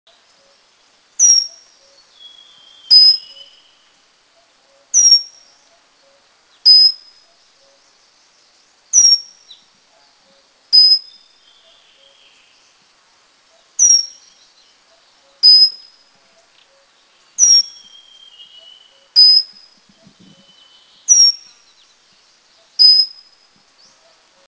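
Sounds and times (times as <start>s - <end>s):
Pygmy Wren Babbler calling in Mishmi India: 1.2s - 3.9s, 4.7s - 8.0s, 8.9s - 9.7s, 10.8s - 12.6s, 13.6s - 15.9s, 16.7s - 21.8s, 22.4s - 23.2s.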